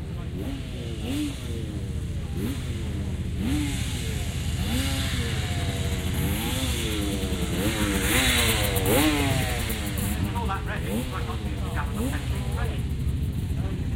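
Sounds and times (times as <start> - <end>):
two-stroke European off-road racing motorcycle engine revving: 0.0 - 13.9.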